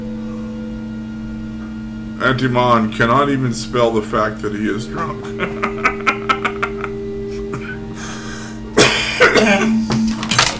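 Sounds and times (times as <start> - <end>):
low hum: 0.0 - 10.5
speech: 2.2 - 6.0
laughter: 5.0 - 7.8
person coughing harshly into the microphone: 7.4 - 7.8, 8.8 - 10.0.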